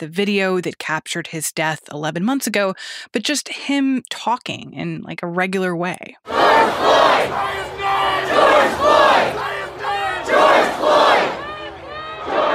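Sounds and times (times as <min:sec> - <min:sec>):
speech: 0:00.0 - 0:09.5
large protest crowd chanting a shouted phrase in unison: 0:06.3 - 0:12.5.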